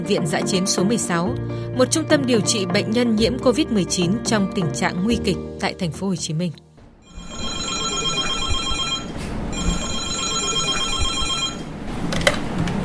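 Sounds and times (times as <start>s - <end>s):
speech: 0.0s - 6.7s
telephone ringing with an electronic trill at a COVID-19 field hospital: 7.0s - 11.8s.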